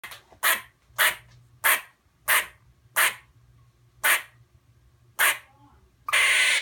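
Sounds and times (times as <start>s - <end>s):
squirrel barking: 0.4s - 3.2s, 4.0s - 4.4s, 5.2s - 5.5s, 6.1s - 6.5s.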